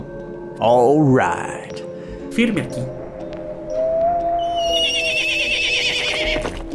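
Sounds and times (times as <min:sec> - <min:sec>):
speech: 0:00.6 - 0:03.0
horse whinnying: 0:04.5 - 0:06.6.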